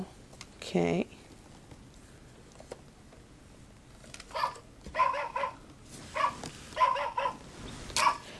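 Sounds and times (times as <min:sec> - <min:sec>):
speech: 0:00.7 - 0:01.1
dog barking in short sharp yaps: 0:04.3 - 0:07.4, 0:08.0 - 0:08.3.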